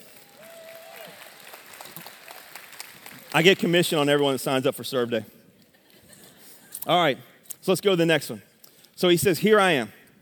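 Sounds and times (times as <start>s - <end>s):
audience clapping hands: 0.0s - 4.2s
speech: 3.3s - 5.4s, 6.9s - 10.0s.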